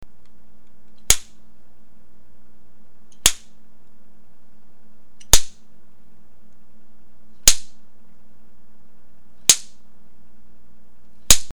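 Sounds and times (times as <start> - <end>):
slapstick crack: 0.9 - 1.4, 3.1 - 3.6, 5.2 - 5.6, 7.4 - 7.8, 9.4 - 9.8, 11.3 - 11.5.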